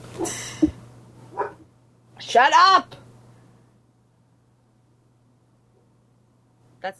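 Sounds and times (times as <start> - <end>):
low steady hum: 0.0 - 6.9
dog barking: 1.3 - 1.7
speech: 2.4 - 3.0.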